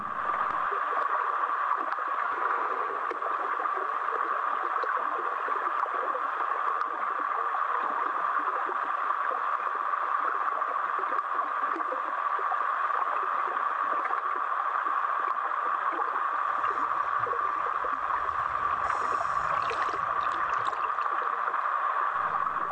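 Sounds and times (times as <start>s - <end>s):
faint underwater gurgling: 0.0s - 8.7s, 15.4s - 22.7s
rain heard from underwater: 0.0s - 22.7s.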